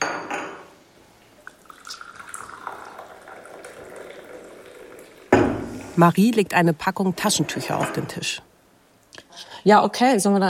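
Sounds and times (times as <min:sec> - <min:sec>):
coffee pouring into a cup: 0:01.4 - 0:06.0
cup or pot clinking as set down: 0:01.6 - 0:05.7
speech: 0:06.0 - 0:08.5, 0:09.6 - 0:10.4.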